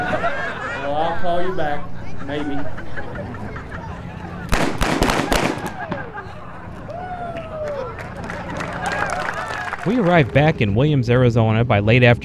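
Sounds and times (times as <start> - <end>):
laughter: 0.0 - 10.7
outdoor crowd murmur with voices calling and talking: 0.0 - 10.8
speech: 1.1 - 3.4, 9.8 - 12.2
gunshot bangs from a staged gunfight: 4.5 - 6.1.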